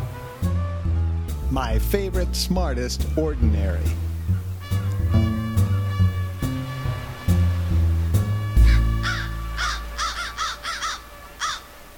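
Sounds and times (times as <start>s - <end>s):
music: 0.0s - 11.9s
speech: 1.5s - 4.1s
crows cawing with harsh rasping calls: 8.6s - 11.8s.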